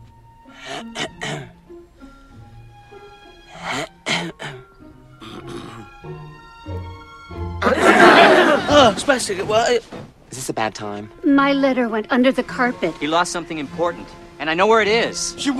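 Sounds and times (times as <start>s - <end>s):
several people clearing their throats beside a bed: 0.6s - 1.6s, 3.6s - 5.9s
laughter: 7.6s - 9.6s
speech: 8.8s - 15.5s.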